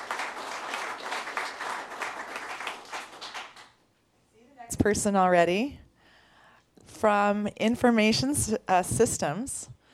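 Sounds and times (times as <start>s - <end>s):
audience applause at a county employee service-award ceremony: 0.0s - 3.7s
speech: 4.8s - 5.8s, 7.0s - 9.8s.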